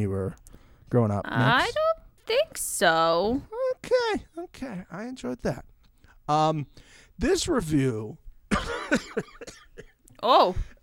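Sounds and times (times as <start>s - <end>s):
speech: 0.0s - 5.7s, 6.3s - 9.6s, 10.2s - 10.7s
breathy laughter breaking into harsh coughs and wheezing laugh-coughs: 8.5s - 10.0s.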